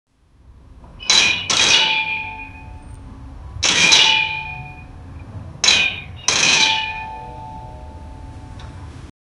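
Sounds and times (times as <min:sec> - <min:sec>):
metal machine brakes stopping: 0:01.0 - 0:03.0, 0:03.6 - 0:04.9, 0:05.6 - 0:07.3.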